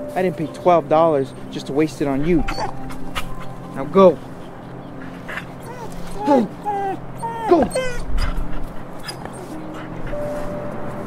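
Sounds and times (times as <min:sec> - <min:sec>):
speech: 0:00.2 - 0:02.8, 0:03.8 - 0:04.3, 0:06.3 - 0:06.6, 0:07.5 - 0:08.0
stray dog whimpering and yipping: 0:02.1 - 0:10.6.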